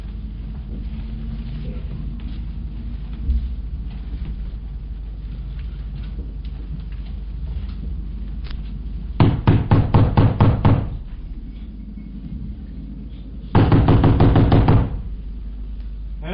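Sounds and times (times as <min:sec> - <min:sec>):
quiet hum: 0:00.0 - 0:16.3
loud knocking on a door by police: 0:09.2 - 0:11.1, 0:13.5 - 0:15.2.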